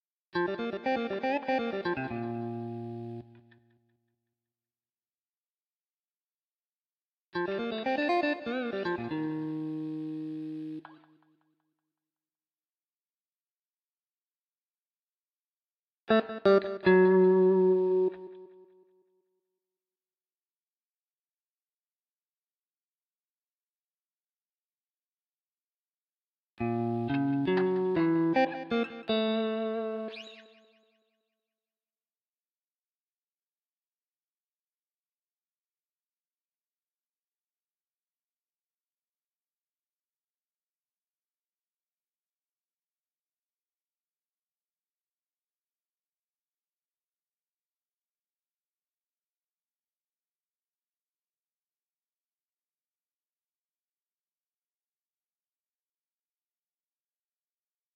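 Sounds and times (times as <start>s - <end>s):
jazz guitar: 0.4s - 3.4s, 7.4s - 11.0s, 16.2s - 18.4s, 26.6s - 30.6s.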